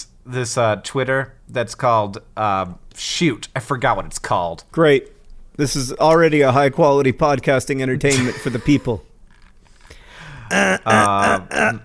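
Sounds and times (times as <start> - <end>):
speech: 0.2 - 9.1, 10.5 - 11.8
person clearing throat: 10.5 - 11.8.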